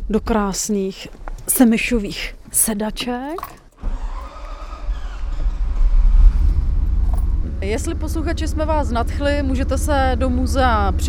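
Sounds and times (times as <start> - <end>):
speech: 0.1 - 3.6, 7.6 - 11.0
vintage car engine starting: 3.2 - 10.8.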